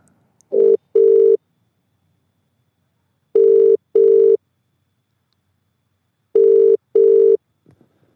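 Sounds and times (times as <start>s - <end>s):
double-burst phone ringback tone heard from the caller's end: 0.5s - 1.4s, 3.4s - 4.4s, 6.4s - 7.4s.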